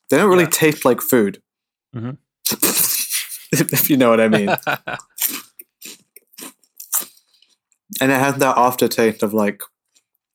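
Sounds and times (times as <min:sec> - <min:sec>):
speech: 0:00.1 - 0:02.7, 0:03.5 - 0:05.4, 0:08.0 - 0:09.7
laughter: 0:03.6 - 0:05.1
crunching and chewing soft chewy licorice pizza: 0:05.0 - 0:08.1, 0:09.8 - 0:10.3.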